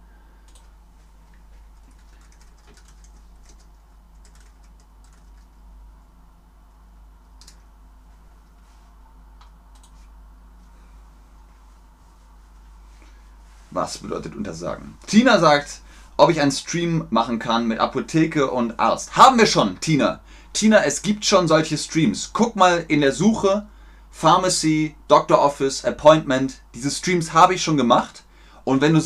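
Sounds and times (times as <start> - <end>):
low steady hum: 0.0 - 29.0
typing a chat message on a computer keyboard: 1.8 - 5.6
speech: 13.7 - 29.0.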